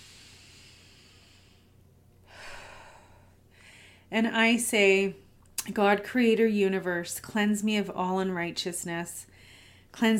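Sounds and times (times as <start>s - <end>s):
slow deep breath: 0.0s - 4.1s, 9.3s - 9.9s
steady low hiss: 0.0s - 5.8s
speech: 4.1s - 9.3s, 9.9s - 10.1s.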